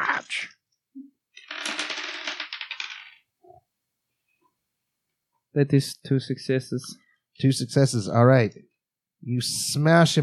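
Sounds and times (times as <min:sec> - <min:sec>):
dice clattering and rolling on a hard surface: 0:01.3 - 0:03.3
speech: 0:05.6 - 0:10.2.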